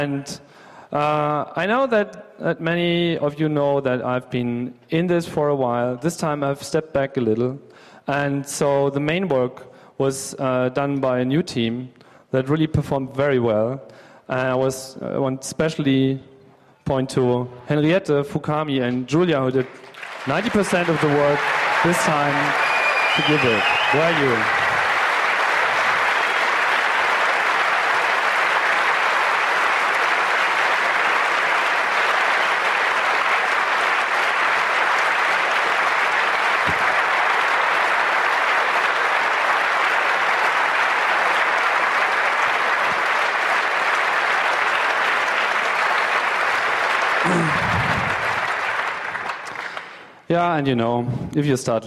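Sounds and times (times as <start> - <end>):
speech: 0.0 - 16.3, 16.9 - 24.6, 50.6 - 51.8
audience applause of many hands clapping: 19.6 - 50.2.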